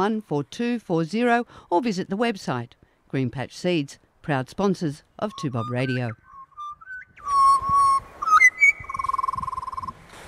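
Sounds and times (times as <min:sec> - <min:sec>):
speech: 0:00.0 - 0:06.2
birds singing in flute-like whistled phrases: 0:05.2 - 0:09.9.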